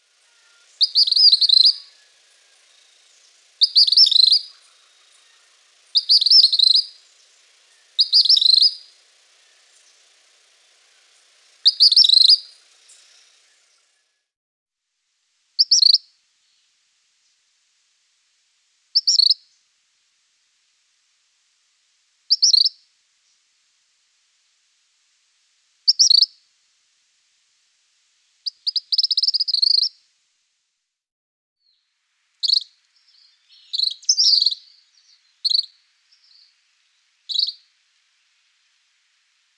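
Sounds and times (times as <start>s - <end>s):
Gray Kingbird singing in Guadeloupe: 0.0s - 14.0s, 15.6s - 16.0s, 19.0s - 19.4s, 22.3s - 22.8s, 25.9s - 26.4s, 28.5s - 29.9s, 32.4s - 37.8s.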